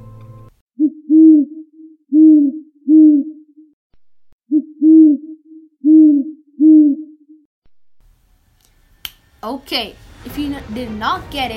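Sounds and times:
great horned owl hooting: 0:00.8 - 0:03.7, 0:04.5 - 0:07.4
speech: 0:09.4 - 0:11.5.

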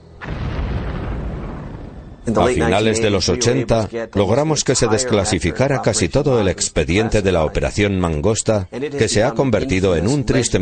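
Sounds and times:
explosion sound effect with heavy low rumbling roar: 0:00.0 - 0:03.0
speech: 0:02.3 - 0:10.6.

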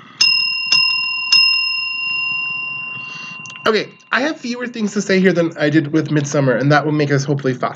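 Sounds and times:
small handheld bell ringing: 0:00.0 - 0:04.6
speech: 0:03.6 - 0:07.7.

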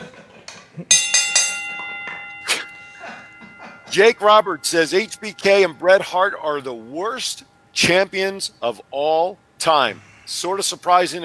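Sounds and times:
bell ringing: 0:00.9 - 0:08.6
speech: 0:03.9 - 0:11.2.

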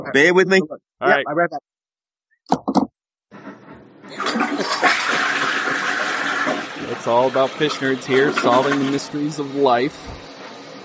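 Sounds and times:
speech: 0:00.0 - 0:01.7, 0:04.1 - 0:05.2, 0:06.8 - 0:10.2
toilet flushing: 0:03.4 - 0:10.8.

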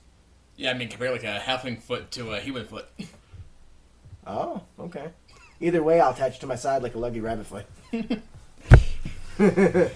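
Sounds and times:
speech: 0:00.6 - 0:03.2, 0:04.2 - 0:08.4, 0:09.4 - 0:09.9
palm slapping own face in a facepalm: 0:08.6 - 0:09.2
laughter: 0:09.0 - 0:09.9.

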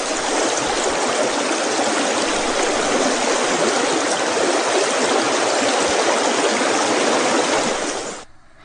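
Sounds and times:
small brook babbling and gurgling: 0:00.0 - 0:08.3.

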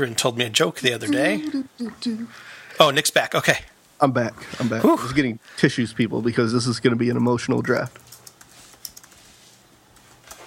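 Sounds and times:
speech: 0:00.0 - 0:08.2
faint hiss: 0:00.0 - 0:10.4
slow typing on a computer keyboard: 0:07.6 - 0:09.3.

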